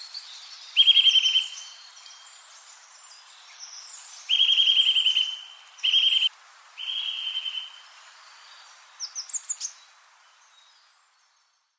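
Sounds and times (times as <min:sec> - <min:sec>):
Eurasian nuthatch Sitta europaea sharp high chirps: 0:00.8 - 0:01.8, 0:03.6 - 0:07.8.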